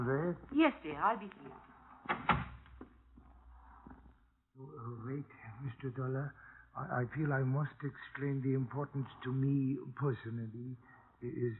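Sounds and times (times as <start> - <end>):
speech: 0.0 - 2.4, 4.6 - 11.5
door opening with knocks and a creak: 2.0 - 2.9.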